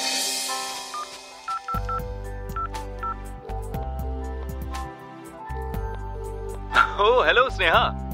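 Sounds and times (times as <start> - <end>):
telephone keypad dialing beeps: 0.9 - 3.2
steady low telephone tone: 1.8 - 8.1
speech: 7.0 - 8.0.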